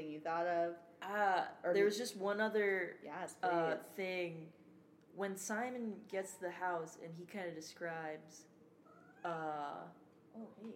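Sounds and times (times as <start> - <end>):
speech: 0.0 - 4.6, 5.2 - 8.5, 9.2 - 10.7
cat meowing: 8.9 - 9.3.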